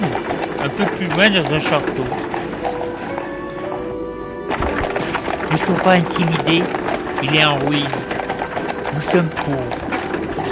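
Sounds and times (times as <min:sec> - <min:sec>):
speech: 0:00.0 - 0:02.3, 0:05.5 - 0:08.1, 0:09.0 - 0:09.9
horse hooves clip-clop as a girl rides on horseback: 0:00.0 - 0:10.4
sustained tonal music: 0:00.0 - 0:10.4.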